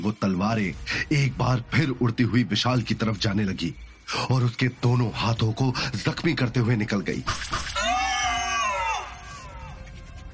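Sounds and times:
speech: 0.0s - 7.8s
man screaming in pain: 7.8s - 9.7s.

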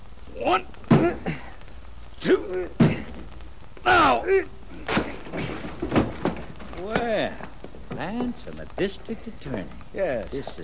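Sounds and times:
speech: 0.4s - 1.4s, 2.2s - 3.0s, 3.8s - 6.0s, 6.8s - 10.6s
door being broken open: 2.8s - 3.3s, 3.9s - 8.1s.

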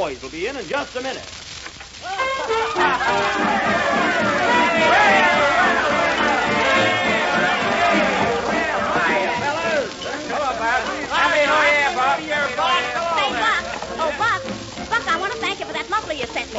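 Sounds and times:
speech: 0.0s - 1.4s, 2.0s - 3.7s, 16.1s - 16.5s
party crowd chattering in a parlor: 2.0s - 16.5s
party crowd laughing in a parlor: 2.5s - 14.4s.

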